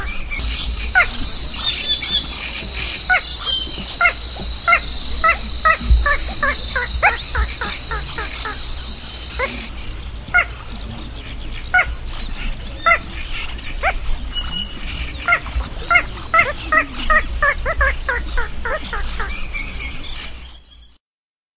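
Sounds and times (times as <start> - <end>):
steady high whine: 0.0 - 20.7
low background rumble: 0.0 - 20.9
bird calls in short harmonic notes repeated rapidly: 0.0 - 21.0.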